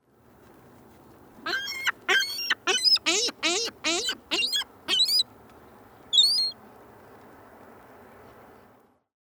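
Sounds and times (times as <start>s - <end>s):
ring-billed gull: 1.5s - 5.2s, 6.1s - 6.6s.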